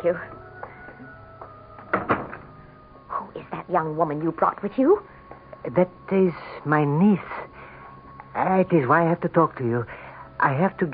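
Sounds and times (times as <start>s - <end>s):
speech: 0.0s - 0.4s, 3.7s - 7.4s, 8.4s - 10.9s
door opening with a soft click: 1.8s - 2.5s.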